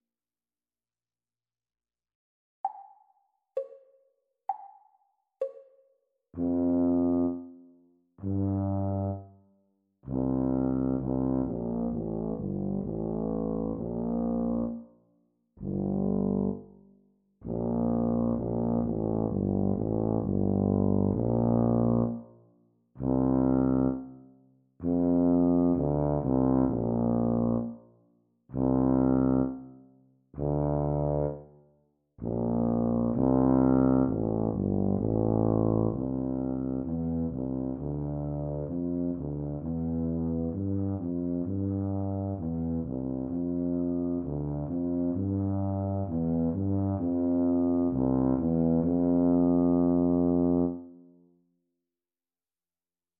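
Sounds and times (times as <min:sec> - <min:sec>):
Bb tuba duet practice: 0:06.4 - 0:09.3, 0:10.0 - 0:15.0, 0:15.6 - 0:16.8, 0:17.4 - 0:22.4, 0:23.0 - 0:24.2, 0:24.8 - 0:27.9, 0:28.5 - 0:31.6, 0:32.2 - 0:51.1.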